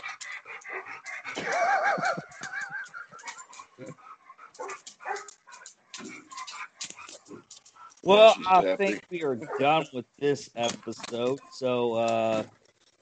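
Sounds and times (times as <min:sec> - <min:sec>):
dog barking and yipping excitedly: 0:00.0 - 0:09.9
laughter: 0:01.3 - 0:04.0, 0:08.1 - 0:12.4
speech: 0:08.1 - 0:13.0.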